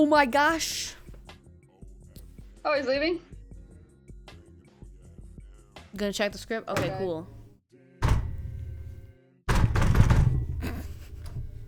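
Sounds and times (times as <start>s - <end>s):
speech: 0.0s - 1.0s, 2.6s - 3.3s, 6.0s - 7.4s
hand banging on a desk: 6.8s - 11.6s.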